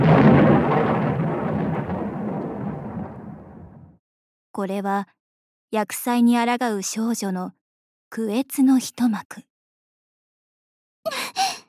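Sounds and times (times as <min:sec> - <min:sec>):
heavy thunder strike with low rumble: 0:00.0 - 0:04.0
speech: 0:04.6 - 0:09.5.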